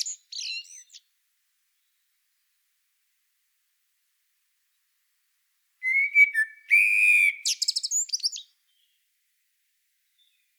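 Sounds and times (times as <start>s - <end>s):
common blackbird Turdus merula song: 0.0s - 2.7s, 5.8s - 9.2s, 10.0s - 10.5s.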